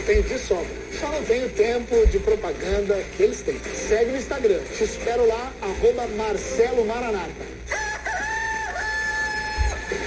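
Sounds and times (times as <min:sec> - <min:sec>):
speech: 0:00.0 - 0:07.8
rooster crowing: 0:07.7 - 0:10.0.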